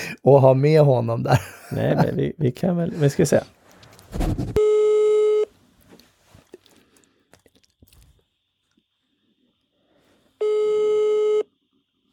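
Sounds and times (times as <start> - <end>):
speech: 0.2 - 4.8
buzzing telephone ring tones of a call placed on air: 4.6 - 5.5, 10.4 - 11.5.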